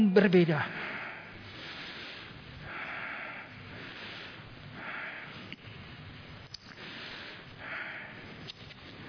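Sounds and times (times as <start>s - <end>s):
speech: 0.1s - 0.9s
heavy panting breaths behind a face mask: 0.6s - 5.5s, 6.7s - 9.0s.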